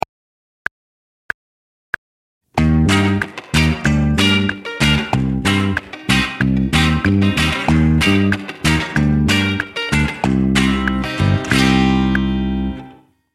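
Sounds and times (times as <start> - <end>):
reggae groove: 2.6 - 12.8.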